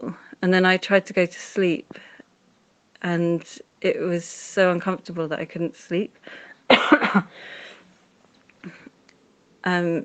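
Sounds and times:
speech: 0.4 - 2.1, 3.0 - 7.6, 9.6 - 10.0
dry tickly coughs: 6.7 - 7.4.

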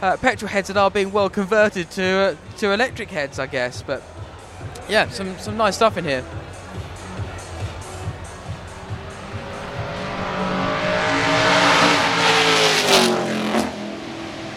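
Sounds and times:
speech: 0.0 - 6.5
Ferrari Lancia D50 racing car engine revving: 6.2 - 14.5.

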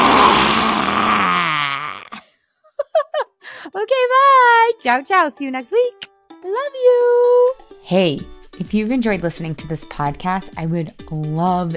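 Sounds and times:
loud exhale with tongue stuck out: 0.0 - 2.1
speech: 3.7 - 11.7.

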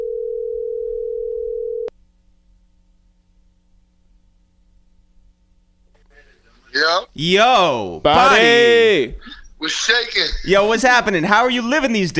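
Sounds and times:
telephone dial tone: 0.0 - 1.9
speech: 7.0 - 12.1.

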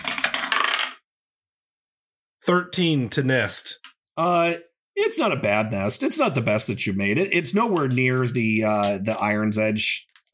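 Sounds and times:
dice rolled for a tabletop roleplaying game clattering across a surface: 0.0 - 1.1
speech: 2.4 - 10.3.

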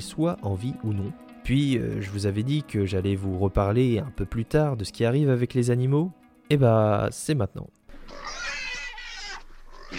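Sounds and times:
speech: 0.0 - 8.4
pig grunting: 7.9 - 9.9.

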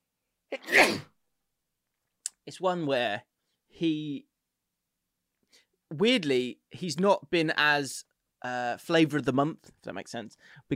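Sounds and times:
single human sneeze: 0.5 - 1.2
speech: 2.5 - 4.3, 5.5 - 10.7.

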